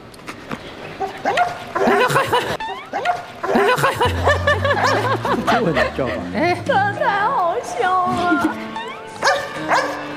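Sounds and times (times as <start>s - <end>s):
lively dog barking, yipping and whimpering: 1.0s - 5.3s, 8.8s - 10.1s
laughter: 1.6s - 9.0s
speech: 5.4s - 8.7s.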